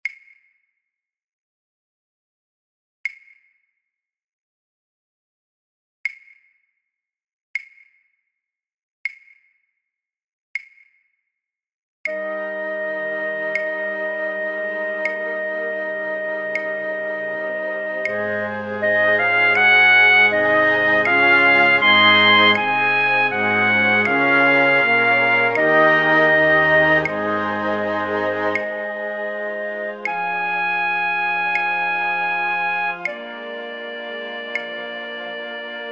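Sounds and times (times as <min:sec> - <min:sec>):
flute in a flute orchestra for practice tracks: 0:12.1 - 0:35.9.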